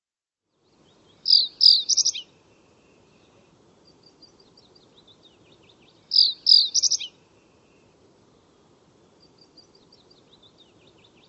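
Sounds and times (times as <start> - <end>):
bird whistling calls: 1.2 - 2.3, 6.1 - 7.2.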